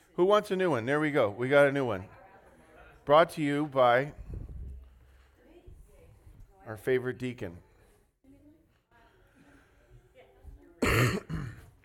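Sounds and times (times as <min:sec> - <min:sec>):
speech: 0:00.2 - 0:02.2, 0:03.1 - 0:04.2, 0:06.7 - 0:07.6
person coughing: 0:10.8 - 0:11.7.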